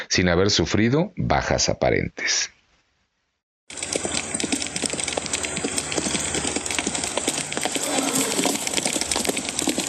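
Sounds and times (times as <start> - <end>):
speech: 0.1 - 2.6
many horses galloping with hooves clopping: 3.7 - 9.8.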